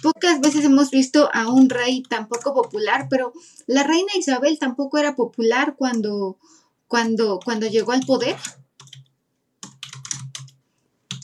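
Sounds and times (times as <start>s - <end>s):
typing on a computer keyboard: 0.0s - 3.3s, 7.0s - 11.2s
speech: 0.0s - 8.6s.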